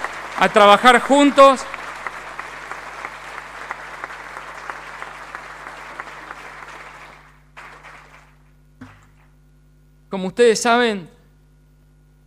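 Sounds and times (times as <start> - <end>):
large crowd applauding: 0.0 - 9.3
speech: 0.4 - 1.7, 10.1 - 11.2.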